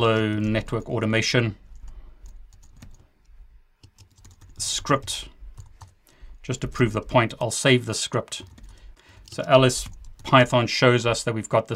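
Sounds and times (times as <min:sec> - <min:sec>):
speech: 0:00.0 - 0:01.6, 0:04.6 - 0:05.3, 0:06.4 - 0:08.6, 0:09.3 - 0:11.7
typing on a computer keyboard: 0:02.2 - 0:03.0, 0:03.8 - 0:06.0, 0:08.2 - 0:10.4.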